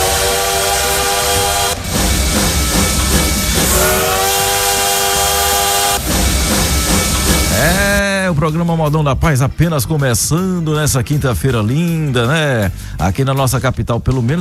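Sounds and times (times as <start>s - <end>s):
train whistle blasts: 0.0s - 8.0s
train engine roaring: 0.0s - 9.3s
speech: 8.5s - 14.4s.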